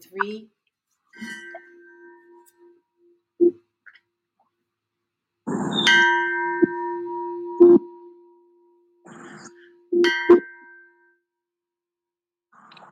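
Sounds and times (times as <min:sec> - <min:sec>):
speech: 0:00.2 - 0:00.6
Tibetan bell being struck: 0:01.2 - 0:02.8, 0:05.8 - 0:10.9.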